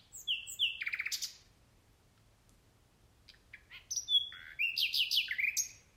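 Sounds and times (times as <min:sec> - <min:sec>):
nightingale singing: 0:00.0 - 0:01.5, 0:03.2 - 0:05.9.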